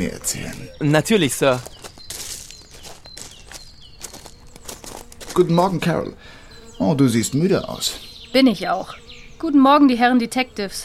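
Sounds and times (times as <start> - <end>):
speech: 0.0 - 1.7, 5.4 - 10.8
soft faint footsteps walking at an even pace: 0.4 - 5.8.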